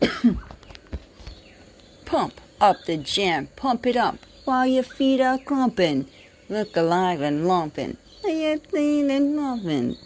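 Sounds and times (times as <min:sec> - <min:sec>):
short rough coughs: 0:00.0 - 0:00.4
speech: 0:02.1 - 0:10.0.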